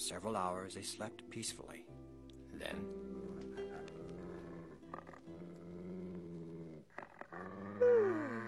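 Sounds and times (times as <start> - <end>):
speech: 0.1 - 3.2
dog growling at night: 2.7 - 8.4.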